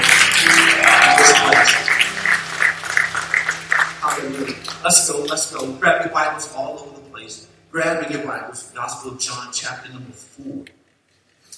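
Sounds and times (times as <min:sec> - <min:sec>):
crowd clapping hands in a steady rhythmic beat: 0:00.0 - 0:05.5
low sustained musical hum: 0:00.0 - 0:10.4
speech: 0:04.8 - 0:10.8.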